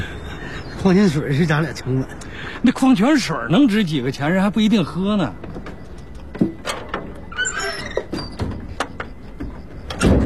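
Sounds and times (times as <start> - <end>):
speech: 0.8 - 5.5
door sliding shut with a sharp high squeal: 6.6 - 10.2.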